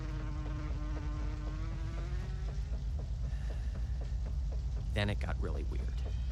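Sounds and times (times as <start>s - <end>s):
fly buzzing: 0.0s - 2.6s
steady low rumbling background: 0.0s - 6.3s
speech: 5.0s - 6.2s.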